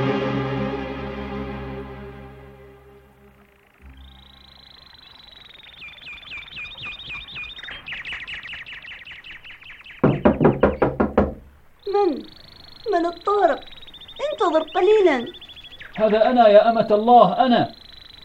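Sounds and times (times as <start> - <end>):
high chirping tones: 1.6 - 11.0, 11.7 - 18.2
rapid sharp knocks on a door: 10.0 - 11.5
speech: 14.5 - 15.4, 16.0 - 17.8.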